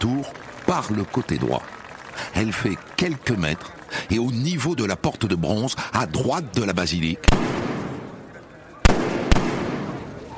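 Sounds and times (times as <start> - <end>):
crowd murmuring on a public square: 0.0 - 10.3
speech: 0.2 - 7.6
gunshots fired into a crowd near the bronze door beside the basilica: 7.2 - 10.3.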